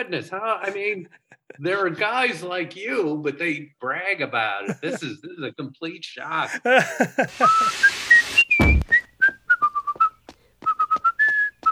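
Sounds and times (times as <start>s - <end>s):
speech: 0.0s - 8.0s
laughter: 0.6s - 1.7s, 4.6s - 5.3s, 6.4s - 8.0s
burst of noise: 7.3s - 8.9s
person whistling a jaunty tune: 7.4s - 11.6s.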